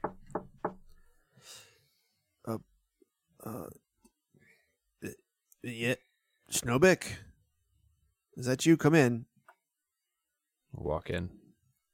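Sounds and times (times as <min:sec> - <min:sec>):
knocking on a door: 0:00.0 - 0:01.0
speech: 0:02.5 - 0:02.7, 0:06.6 - 0:07.2, 0:08.4 - 0:09.3, 0:10.8 - 0:11.4.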